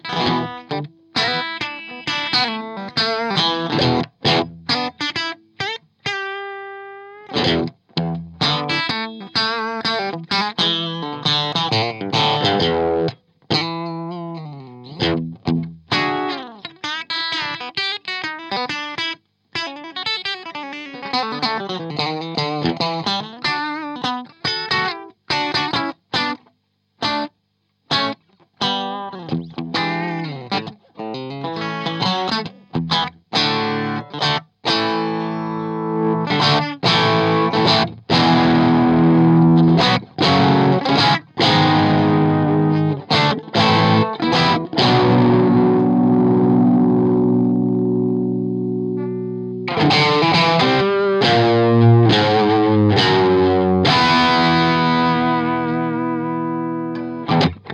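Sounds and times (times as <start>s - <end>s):
Strat bridge pickup through 12ax7 amp: 0.0s - 27.3s, 27.9s - 57.7s.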